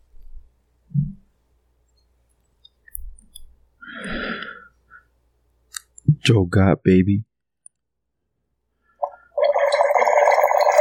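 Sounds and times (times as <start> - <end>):
speech: 6.3 - 7.3
wine aerator gurgling as wine is poured: 9.4 - 10.8.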